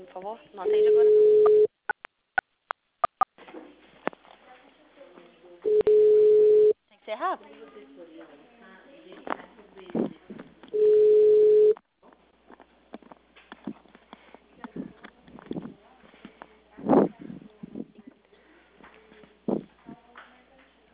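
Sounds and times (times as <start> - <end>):
speech: 0.2 - 1.7
telephone ringing tone while placing a call: 0.7 - 1.7, 5.7 - 6.8, 10.8 - 11.8.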